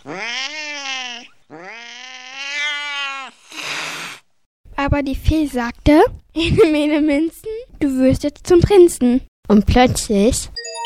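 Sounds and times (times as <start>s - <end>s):
cat yowling meows: 0.0s - 4.2s
speech: 4.9s - 10.6s.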